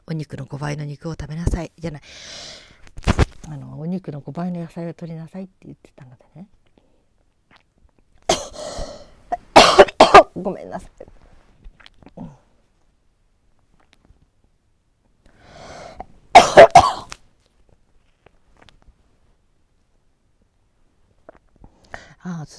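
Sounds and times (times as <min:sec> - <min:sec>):
faint small noises: 0:00.0 - 0:22.5
speech: 0:00.1 - 0:06.6, 0:10.4 - 0:11.2
breathy lead-in: 0:02.0 - 0:02.9, 0:06.8 - 0:07.1, 0:15.2 - 0:16.1, 0:21.6 - 0:22.2
harsh coughing: 0:08.3 - 0:10.4, 0:16.3 - 0:17.1.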